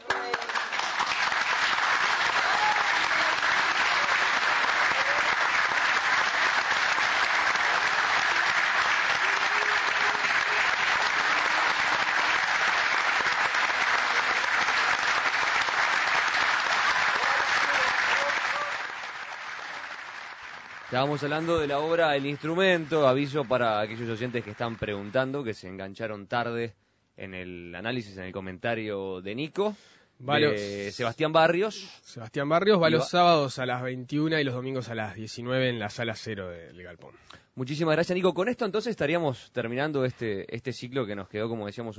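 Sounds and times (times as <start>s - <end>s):
large theatre audience applauding after a play: 0.0s - 25.4s
speech: 21.0s - 41.9s.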